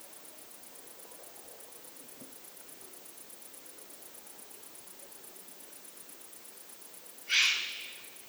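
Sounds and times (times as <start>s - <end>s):
juvenile Eurasian eagle-owl rasping hiss: 7.3s - 8.2s.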